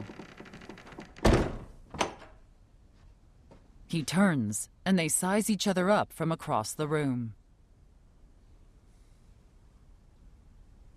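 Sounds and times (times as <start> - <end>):
heavy dull thunk of a door being closed: 1.2 - 2.4
speech: 3.9 - 7.4.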